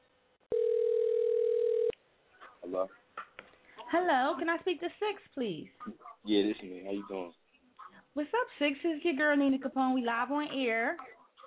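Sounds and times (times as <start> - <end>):
phone ringback tone during an outgoing call to an on-air show: 0.5 - 1.9
speech: 2.7 - 3.0, 3.9 - 7.4, 8.2 - 11.2.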